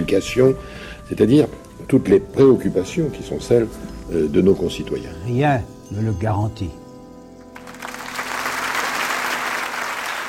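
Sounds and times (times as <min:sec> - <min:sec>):
speech: 0:00.1 - 0:06.8
audience applause welcoming a guest: 0:07.6 - 0:10.2.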